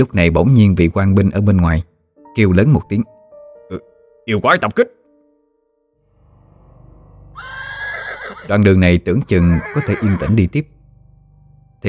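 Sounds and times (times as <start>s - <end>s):
speech: 0.0s - 3.1s, 3.7s - 5.0s, 8.5s - 10.8s
panicking horses neighing wildly: 7.3s - 8.6s, 9.3s - 10.4s.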